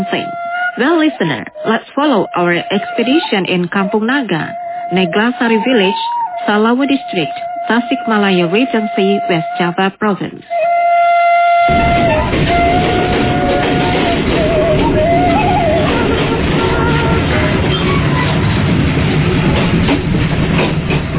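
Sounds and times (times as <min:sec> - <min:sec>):
diesel train engine roaring on the way to Kampung Naga: 0:00.0 - 0:09.6, 0:11.7 - 0:21.1
brief horn-like tone: 0:00.0 - 0:09.9, 0:11.4 - 0:17.6
speech: 0:00.0 - 0:10.6, 0:11.7 - 0:12.6.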